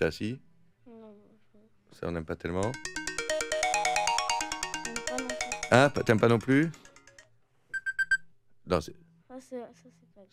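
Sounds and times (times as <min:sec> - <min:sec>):
speech: 0:00.0 - 0:00.5, 0:01.9 - 0:03.0, 0:05.7 - 0:06.8, 0:08.7 - 0:10.3
bright electronic alarm clock ringtone with chiming melody: 0:02.6 - 0:08.3.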